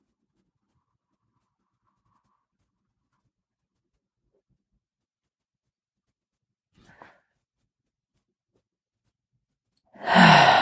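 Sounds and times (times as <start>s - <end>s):
deep held breath let out in a long breathy sigh: 10.0s - 10.5s.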